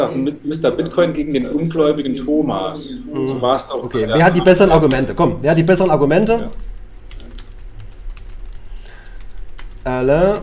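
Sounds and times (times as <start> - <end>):
speech: 0.0 - 6.7, 9.8 - 10.4
rapid typing on a computer keyboard: 4.0 - 10.4.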